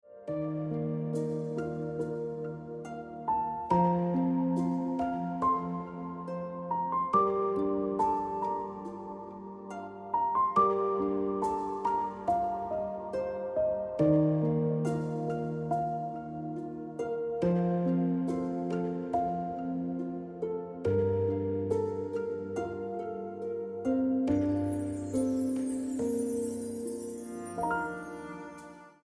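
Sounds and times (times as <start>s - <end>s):
emotional piano ringtone music: 0.0s - 29.0s.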